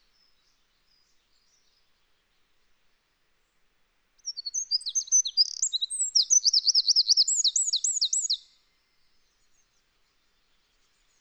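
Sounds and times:
Eurasian wren song: 0:04.2 - 0:08.5.

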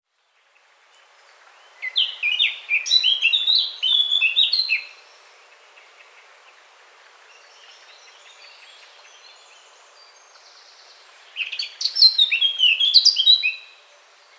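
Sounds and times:
Eurasian blackcap Sylvia atricapilla warbling song: 0:01.6 - 0:05.0, 0:11.3 - 0:13.7.

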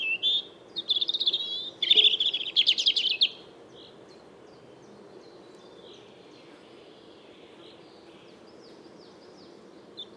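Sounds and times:
European robin singing: 0:00.0 - 0:10.1.

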